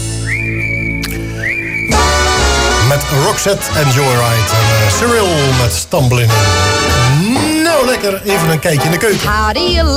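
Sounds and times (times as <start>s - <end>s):
person whistling: 0.0s - 2.2s
music: 0.0s - 9.9s
speech: 3.0s - 9.9s.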